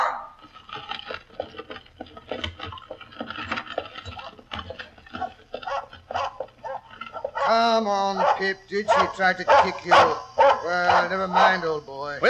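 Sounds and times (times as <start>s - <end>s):
dog snarling and growling: 5.2s - 11.6s
speech: 7.5s - 12.2s.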